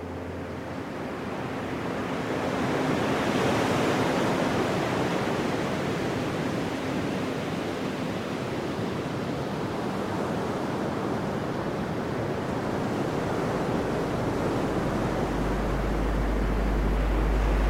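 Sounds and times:
ocean waves: 0.0s - 17.6s.

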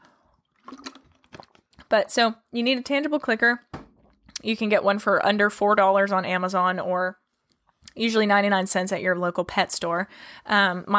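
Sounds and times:
person sipping water: 0.2s - 1.8s
speech: 1.9s - 3.7s, 4.4s - 7.2s, 8.0s - 10.9s.

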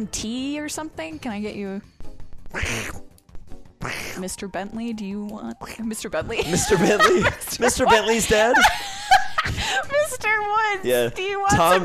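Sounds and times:
speech: 0.0s - 3.0s, 3.8s - 9.0s, 9.6s - 11.8s
person imitating a duck quack: 2.5s - 3.1s, 3.8s - 4.4s
laughter: 6.3s - 10.4s.

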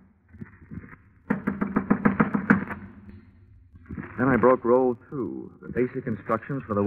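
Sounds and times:
knocking on a wooden door: 1.3s - 2.9s
speech: 4.2s - 6.8s.

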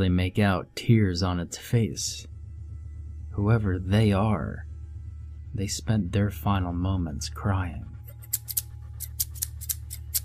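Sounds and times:
speech: 0.0s - 2.3s, 3.4s - 4.7s, 5.5s - 7.9s
steady low hum: 0.0s - 10.2s
scissors snipping: 8.1s - 10.2s.

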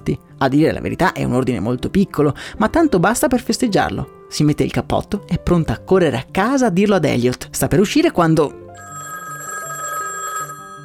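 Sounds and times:
speech: 0.0s - 8.6s
telephone ringing: 8.8s - 10.8s.

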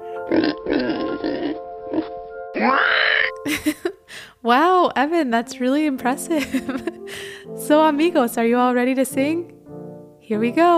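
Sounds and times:
person vocally imitating a pig's squealing whinny: 0.3s - 3.4s
speech: 4.4s - 9.5s, 10.3s - 10.7s.

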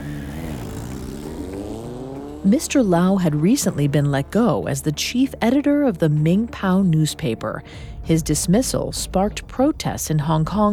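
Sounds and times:
motorbike engine revving and speeding away: 0.0s - 4.5s
speech: 2.4s - 10.7s.

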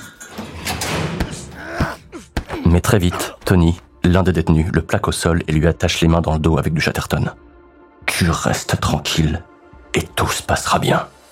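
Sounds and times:
prison guard's keys unlocking a door: 0.0s - 1.6s
door dragging creak as pushed open: 0.0s - 1.9s
speech: 2.6s - 7.5s, 8.2s - 11.2s.

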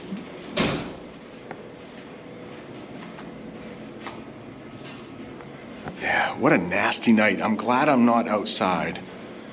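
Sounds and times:
locked building door being opened with clunks and a rattle: 0.4s - 1.1s
speech: 6.4s - 9.1s.

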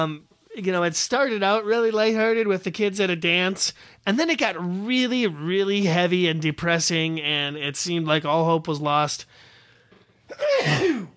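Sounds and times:
speech: 0.0s - 9.5s, 10.3s - 11.1s
forceful sneeze: 10.3s - 11.1s.

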